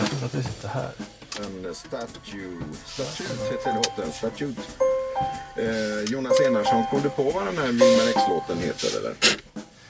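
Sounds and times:
speech: 0.2s - 9.5s
car seatbelt reminder chime with short clear electronic tones: 3.4s - 9.0s.

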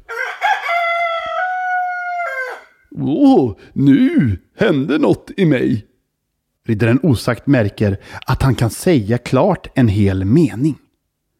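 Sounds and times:
man imitating a rooster crowing: 0.0s - 4.5s
speech: 3.0s - 5.9s, 6.7s - 10.8s.

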